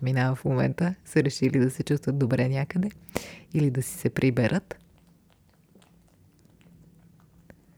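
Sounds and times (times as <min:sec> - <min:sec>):
speech: 0:00.0 - 0:04.8
cat chewing and smacking its lips in a studio: 0:02.9 - 0:07.7.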